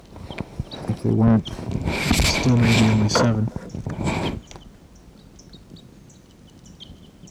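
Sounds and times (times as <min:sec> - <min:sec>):
rustling noise: 0:00.0 - 0:04.9
wild birds chirping: 0:00.0 - 0:07.2
speech: 0:01.0 - 0:04.2.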